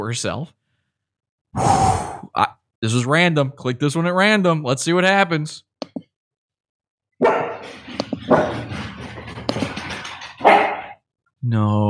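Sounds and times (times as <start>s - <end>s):
speech: 0.0s - 0.6s, 1.5s - 5.7s, 11.4s - 11.8s
dog yipping: 7.2s - 7.6s, 10.4s - 11.0s
dogs barking: 7.2s - 8.9s, 10.3s - 11.0s.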